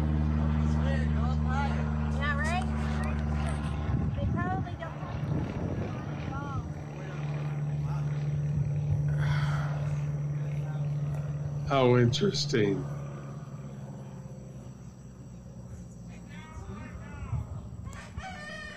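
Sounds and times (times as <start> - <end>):
small propeller plane engine droning overhead: 0.0 - 18.7
speech: 11.7 - 13.0
rooster crowing: 17.8 - 18.7.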